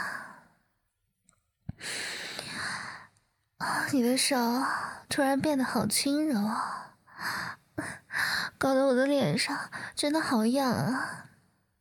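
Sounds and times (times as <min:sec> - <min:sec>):
breathy exhale: 0:01.8 - 0:03.1
speech: 0:03.9 - 0:11.3.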